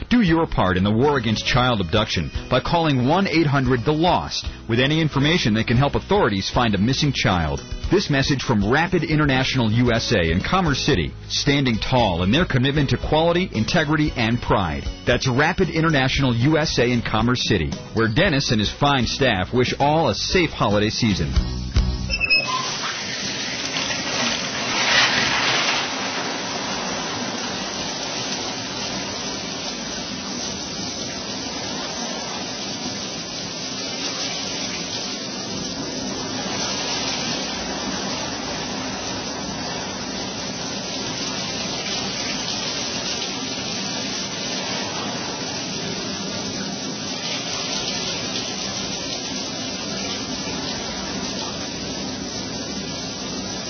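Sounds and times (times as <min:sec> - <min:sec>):
shower running: 0:00.0 - 0:53.6
speech: 0:00.3 - 0:21.7.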